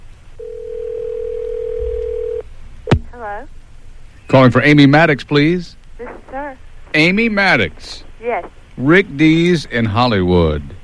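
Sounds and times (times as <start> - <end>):
faint telephone line noise: 0.0 - 10.8
outgoing telephone call ringback tone: 0.4 - 2.4
speech: 3.2 - 3.6, 4.3 - 10.8.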